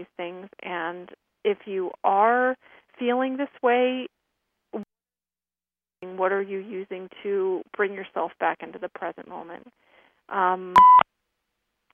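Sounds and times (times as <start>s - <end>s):
speech: 0.0s - 4.1s, 6.0s - 11.1s
short electronic call-in beep: 10.7s - 11.0s.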